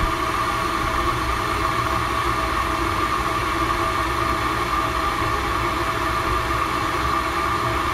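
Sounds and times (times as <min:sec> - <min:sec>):
boiling water: 0:00.0 - 0:07.9.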